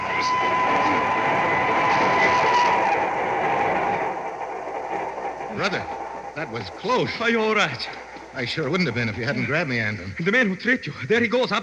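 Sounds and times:
faint metallic whine: 0:00.0 - 0:11.6
subway train rushing past on the tracks: 0:00.0 - 0:11.6
speech: 0:05.6 - 0:11.6.

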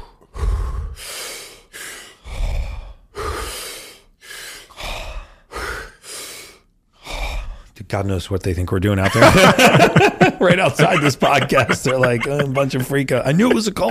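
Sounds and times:
forceful deep breathing through the mouth in a breathing exercise: 0:00.0 - 0:07.8
speech: 0:07.9 - 0:13.8
laughter: 0:09.0 - 0:13.8.

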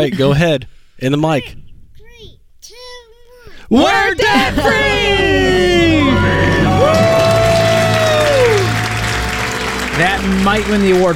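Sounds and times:
speech: 0:00.0 - 0:01.6, 0:03.7 - 0:07.2, 0:10.0 - 0:11.1
crowd cheering: 0:03.7 - 0:11.1
family shouting a celebratory group scream: 0:03.8 - 0:10.0
laughter: 0:04.0 - 0:08.8
applause: 0:05.6 - 0:11.1.

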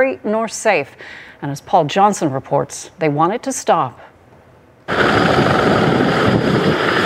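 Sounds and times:
speech: 0:00.0 - 0:04.1, 0:04.9 - 0:06.8
helicopters spraying glyphosate herbicide over forest clear cuts in British Columbia: 0:04.9 - 0:07.0.

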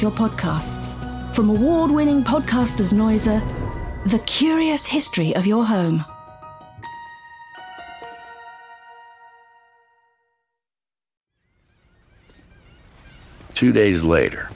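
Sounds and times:
speech: 0:00.0 - 0:06.1, 0:13.6 - 0:14.5
flock of seagulls squawking and swooping overhead along the San Francisco waterfront: 0:11.4 - 0:14.5
steady wash of harbor water and surf: 0:11.7 - 0:14.5.

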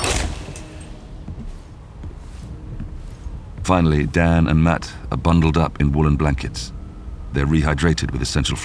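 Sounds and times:
mountain hut door crashing open in a violent storm: 0:00.0 - 0:01.1
speech: 0:03.7 - 0:08.6.

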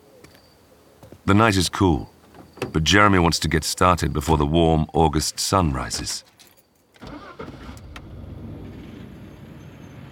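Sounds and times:
speech: 0:01.3 - 0:06.3
truck engine starting and idling: 0:07.0 - 0:10.1.

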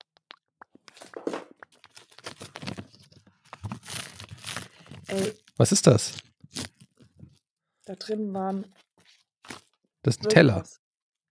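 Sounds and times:
paper wrapping torn and crumpled: 0:00.9 - 0:07.3, 0:08.7 - 0:09.7
speech: 0:05.1 - 0:06.2, 0:08.0 - 0:08.8, 0:10.0 - 0:10.8.

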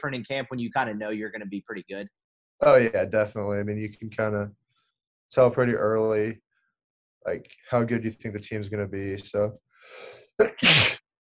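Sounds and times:
speech: 0:00.0 - 0:04.6, 0:05.3 - 0:06.4, 0:07.2 - 0:11.0
person sneezing: 0:10.4 - 0:11.0.

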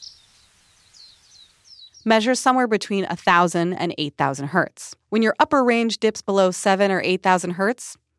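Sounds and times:
small bird singing high quick chirps: 0:00.0 - 0:02.3
speech: 0:02.0 - 0:08.0.

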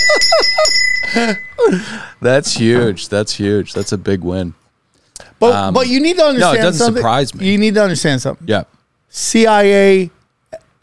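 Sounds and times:
bright metallic bell ringing: 0:00.0 - 0:01.7
speech: 0:01.1 - 0:04.6, 0:05.4 - 0:10.2.

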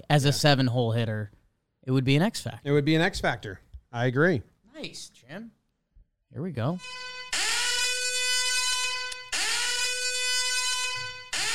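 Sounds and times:
speech: 0:00.1 - 0:05.6, 0:06.3 - 0:07.2
loud blaring electronic alarm in long buzzy blasts: 0:06.8 - 0:11.5.

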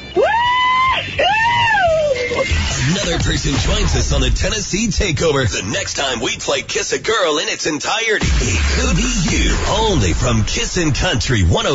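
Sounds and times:
woman screaming with excitement: 0:00.0 - 0:02.4
speech: 0:03.1 - 0:11.7.

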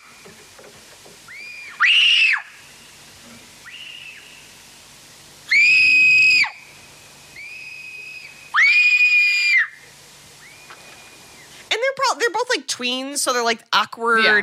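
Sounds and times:
two young girls screaming: 0:01.3 - 0:02.5, 0:05.5 - 0:06.6, 0:07.3 - 0:10.5
speech: 0:12.6 - 0:14.4.

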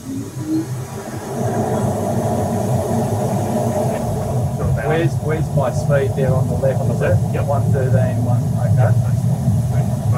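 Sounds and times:
car engine powering up in first gear: 0:00.0 - 0:10.1
speech: 0:00.3 - 0:01.4, 0:05.0 - 0:09.1.

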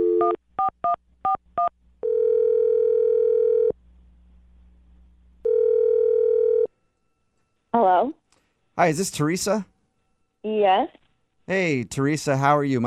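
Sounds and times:
faint low hum: 0:00.0 - 0:12.8
phone ringback tones: 0:02.0 - 0:03.7, 0:05.4 - 0:06.7
speech: 0:08.8 - 0:09.7, 0:10.4 - 0:12.8.

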